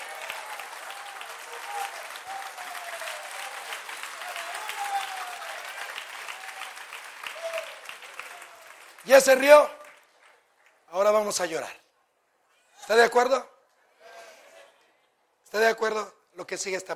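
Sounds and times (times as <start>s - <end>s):
congregation clapping during a church service: 0.0s - 11.3s
speech: 9.0s - 9.8s, 11.0s - 11.8s, 12.8s - 13.5s, 15.5s - 16.9s.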